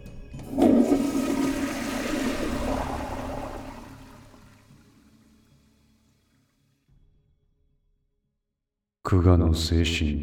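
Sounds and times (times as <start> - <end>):
toilet flushing in an internet café restroom: 0.4 - 6.6
speech: 9.1 - 10.2.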